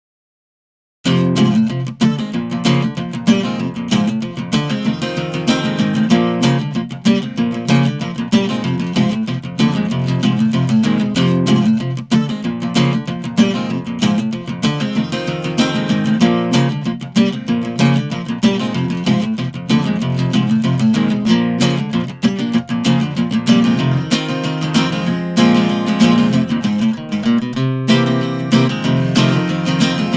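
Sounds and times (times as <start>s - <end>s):
drunken guitar playing: 1.1s - 30.1s.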